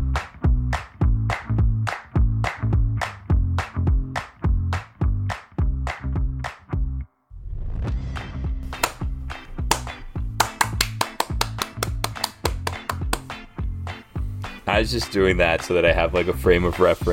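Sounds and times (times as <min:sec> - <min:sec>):
hand claps marking spots for editing: 0:00.0 - 0:06.8, 0:08.7 - 0:14.6
speech: 0:14.8 - 0:17.1.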